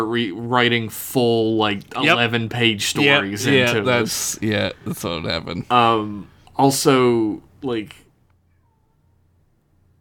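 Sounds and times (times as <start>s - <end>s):
speech: 0.0s - 8.0s
steady low hum: 0.0s - 10.0s
cat meowing: 8.5s - 9.2s.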